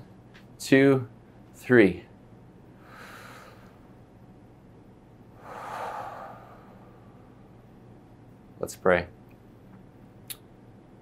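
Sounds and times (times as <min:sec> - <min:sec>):
speech: 0:00.6 - 0:02.1, 0:08.6 - 0:09.2
deep breath in: 0:02.8 - 0:03.8, 0:05.4 - 0:07.4.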